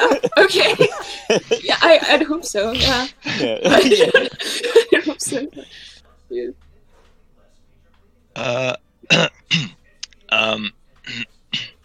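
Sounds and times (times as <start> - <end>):
laughter: 0.0 - 6.0
speech: 0.4 - 0.9, 1.9 - 5.5, 8.4 - 11.7
throat clearing: 8.4 - 9.8, 10.4 - 11.8.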